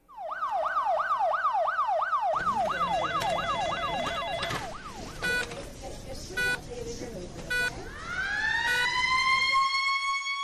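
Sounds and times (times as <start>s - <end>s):
Brazilian Military Police car siren responding to a call: 0.0s - 5.6s, 7.5s - 10.3s
commotion: 0.1s - 10.1s.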